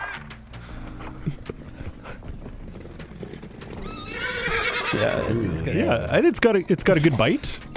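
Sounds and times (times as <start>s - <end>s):
horse trotting with clip-clop of hooves: 0.5s - 7.7s
horse giving a loud shrill whinny: 2.5s - 6.0s
speech: 4.9s - 7.7s.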